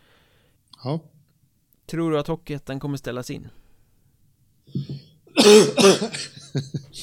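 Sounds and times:
speech: 0:00.8 - 0:01.2, 0:01.9 - 0:03.6, 0:05.4 - 0:07.0
person coughing: 0:04.8 - 0:06.6.

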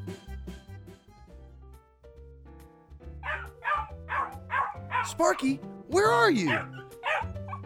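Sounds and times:
dog barking and yipping: 0:03.2 - 0:05.2, 0:06.5 - 0:07.6
upbeat music: 0:05.0 - 0:06.6
person calling out: 0:05.0 - 0:06.7
speech: 0:05.2 - 0:06.8.

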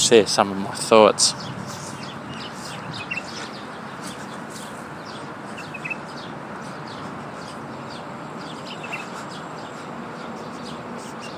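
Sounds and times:
birds chirping and tweeting: 0:00.0 - 0:11.3
steady broadband hum of outdoor ambience: 0:00.0 - 0:11.3
speech: 0:00.1 - 0:01.8.

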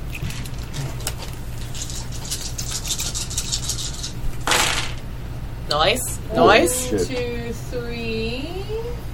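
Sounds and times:
dice from a dice pool clicking and clattering: 0:00.5 - 0:05.0
speech: 0:05.7 - 0:09.1.

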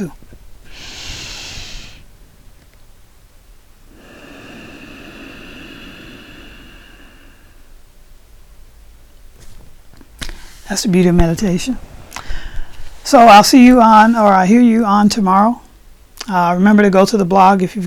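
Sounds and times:
speech: 0:00.0 - 0:00.2, 0:10.7 - 0:11.9, 0:13.0 - 0:15.6, 0:16.3 - 0:17.8
nasal breathing during a meditation exercise: 0:00.6 - 0:02.1, 0:03.9 - 0:07.8, 0:10.3 - 0:10.7, 0:12.1 - 0:13.0.

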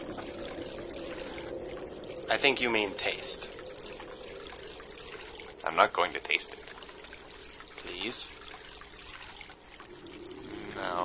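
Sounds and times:
water dripping from a pointy rock: 0:00.0 - 0:11.0
speech: 0:02.3 - 0:03.6, 0:05.7 - 0:06.7, 0:07.9 - 0:08.4.

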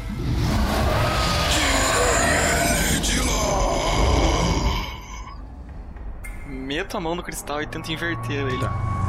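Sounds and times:
loud gravelly dragon roar: 0:00.1 - 0:05.4
speech: 0:06.9 - 0:09.0.

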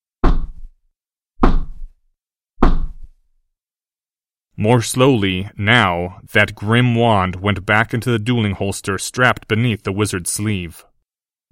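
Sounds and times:
slow heavy knocks on a wooden door: 0:00.2 - 0:00.6, 0:01.4 - 0:01.8, 0:02.6 - 0:03.0
speech: 0:04.6 - 0:10.9.

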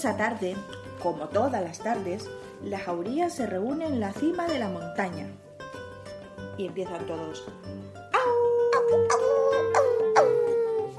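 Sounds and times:
speech: 0:00.0 - 0:05.7, 0:06.6 - 0:08.0
pack of gray wolves howling: 0:08.1 - 0:10.9.

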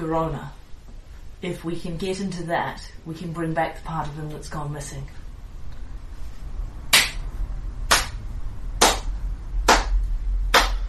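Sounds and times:
speech: 0:00.0 - 0:00.6, 0:01.4 - 0:05.2
low steady rumble: 0:00.0 - 0:10.8
sharp bright slow claps: 0:06.9 - 0:07.2, 0:07.9 - 0:08.2, 0:08.8 - 0:10.8.

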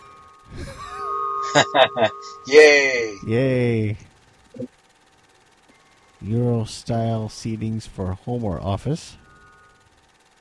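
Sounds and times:
wind chimes ringing: 0:00.0 - 0:03.3
low rumble: 0:00.0 - 0:04.2
speech: 0:01.5 - 0:04.7, 0:06.2 - 0:09.2.

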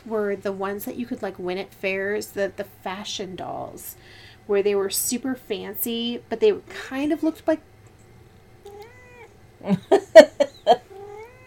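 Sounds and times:
speech: 0:00.0 - 0:07.7, 0:09.6 - 0:10.8
cat meowing: 0:08.6 - 0:09.3, 0:10.9 - 0:11.4.

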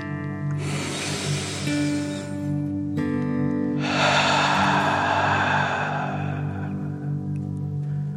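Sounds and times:
deep breath in and out: 0:00.5 - 0:02.6, 0:03.7 - 0:08.1
steady tonal musical drone: 0:00.5 - 0:02.9, 0:03.7 - 0:08.0.

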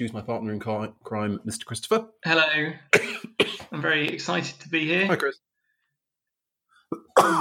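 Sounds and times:
speech: 0:00.0 - 0:05.5, 0:06.9 - 0:07.4
person coughing: 0:02.9 - 0:03.8, 0:06.9 - 0:07.4.

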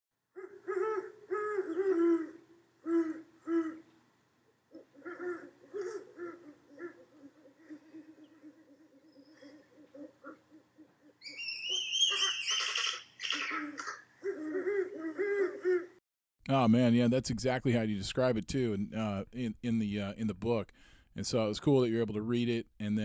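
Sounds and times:
male and female great horned owl pair mating hoots: 0:00.4 - 0:03.9, 0:04.7 - 0:16.0
speech: 0:16.5 - 0:23.0.

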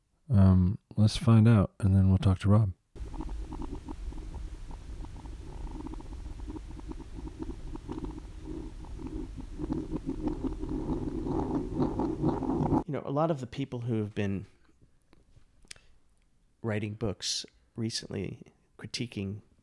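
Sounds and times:
speech: 0:00.3 - 0:02.8, 0:13.2 - 0:14.6, 0:16.6 - 0:19.5
hard-boiled egg rolling around in a bowl played in reverse: 0:03.0 - 0:12.8.

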